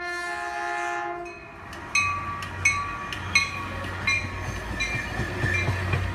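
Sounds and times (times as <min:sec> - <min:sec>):
suburban commuter train horn on the railway out from San Francisco: 0:00.0 - 0:01.5
suburban commuter train rumbling and wheels clacking: 0:01.6 - 0:06.1.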